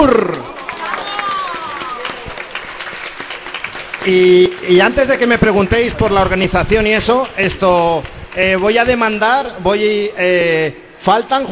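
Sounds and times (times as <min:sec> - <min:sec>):
voices and shouts: 0:00.0 - 0:02.4
crowd applause: 0:00.0 - 0:05.9
speech: 0:04.1 - 0:11.4.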